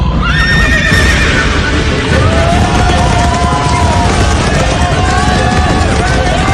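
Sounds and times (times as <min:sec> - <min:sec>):
race crowd noise: 0:00.0 - 0:06.5
horse whinnying in a race: 0:00.2 - 0:01.7
galloping horse hooves in a race: 0:00.3 - 0:06.5.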